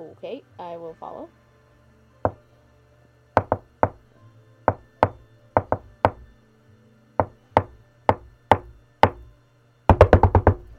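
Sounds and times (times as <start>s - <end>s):
speech: 0.1s - 1.4s
sharp raps on a back door: 2.2s - 2.5s, 3.4s - 4.0s, 4.7s - 6.3s, 7.2s - 9.3s, 9.9s - 10.7s.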